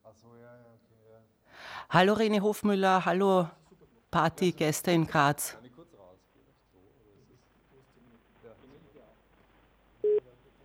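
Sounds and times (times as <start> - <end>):
speech: 0.3 - 5.6
short loud telephone signal tone beep: 10.1 - 10.3.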